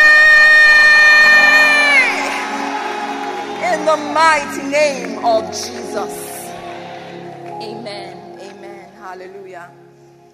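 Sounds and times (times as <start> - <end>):
audience shouting together in victory: 0.0 - 4.2
speech: 3.9 - 6.2, 9.2 - 9.8.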